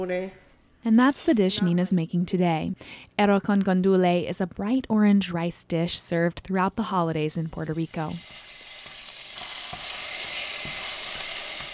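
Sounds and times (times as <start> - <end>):
speech: 0.0 - 8.5
garlic sautéing in a pan with a frozen sofrito cube: 7.4 - 11.7.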